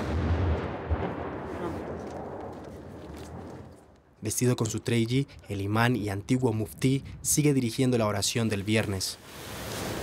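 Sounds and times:
artillery shells firing and exploding: 0:00.0 - 0:03.7
speech: 0:04.2 - 0:09.6.

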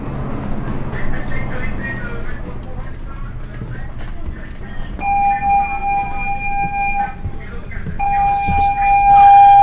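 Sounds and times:
machinery-like noise: 0:00.0 - 0:09.6
murmur of voices: 0:00.0 - 0:09.6
ship's alarm siren blaring during drill: 0:05.0 - 0:07.4, 0:08.0 - 0:09.6.

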